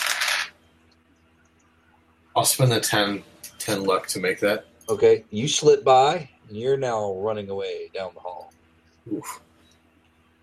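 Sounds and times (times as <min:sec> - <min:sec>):
dice rolling on a table: 0:00.0 - 0:00.5
speech: 0:02.4 - 0:09.5.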